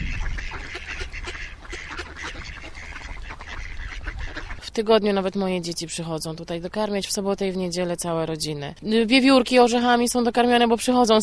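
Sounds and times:
ducks quacking in a dense overlapping chorus: 0:00.0 - 0:05.3
speech: 0:04.8 - 0:11.2.

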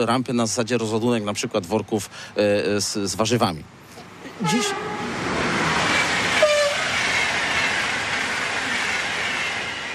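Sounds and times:
speech: 0:00.0 - 0:03.8, 0:04.4 - 0:05.1
train of rolling wagons rumbling past: 0:04.0 - 0:09.9
train wheels squealing: 0:05.8 - 0:09.9.

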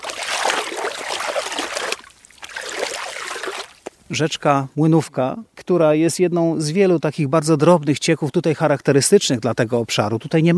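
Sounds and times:
river water flowing past ice-lined banks: 0:00.0 - 0:03.8
speech: 0:04.1 - 0:10.5.

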